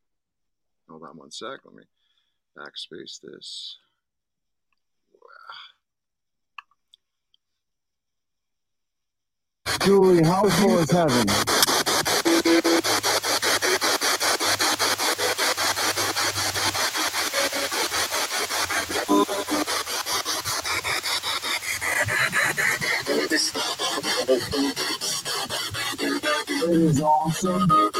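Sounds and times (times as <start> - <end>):
speech: 0.9 - 2.0, 2.6 - 3.9, 9.8 - 11.8, 12.4 - 13.0, 26.8 - 27.9
spirit box radio sweeping rapidly through stations: 9.7 - 27.9.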